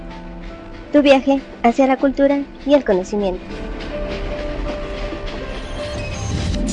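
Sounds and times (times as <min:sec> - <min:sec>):
train rolling along the rails: 0:00.0 - 0:06.7
train wheels clicking over track joints: 0:00.0 - 0:06.7
speech: 0:00.9 - 0:03.8
thin faint metallic squeal of a train: 0:03.4 - 0:06.7.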